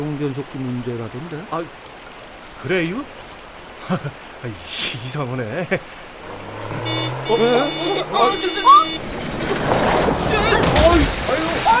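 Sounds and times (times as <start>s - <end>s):
speech: 0.0s - 2.0s, 2.6s - 3.2s, 3.8s - 6.4s, 7.3s - 9.8s
muddy river water churning and sloshing: 0.0s - 11.7s
manual-transmission truck rumbling while swept along a river: 5.9s - 11.7s
startled voices calling out: 6.2s - 11.7s.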